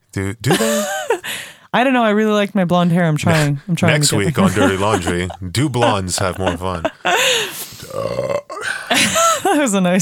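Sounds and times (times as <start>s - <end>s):
speech: 0.2s - 9.9s
laughter: 0.5s - 1.2s, 3.3s - 7.6s, 8.9s - 9.7s
brief breathy sound: 7.1s - 9.0s
loud drawn-out burp: 7.9s - 8.7s.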